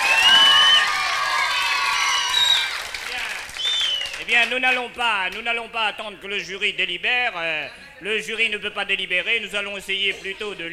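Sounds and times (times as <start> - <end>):
crowd cheering with high whoops and excited shouts: 0.0 - 3.8
crowd applauding: 0.0 - 4.8
speech: 4.4 - 10.7.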